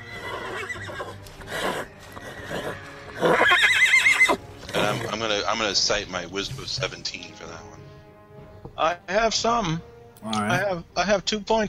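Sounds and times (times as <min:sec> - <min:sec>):
horse whinnying: 0:00.0 - 0:05.2
speech: 0:05.4 - 0:07.7, 0:08.8 - 0:11.6.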